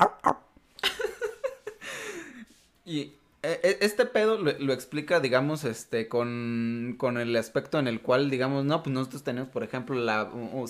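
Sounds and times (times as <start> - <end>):
person imitating a dog barking: 0.0 - 0.5
speech: 2.9 - 10.6.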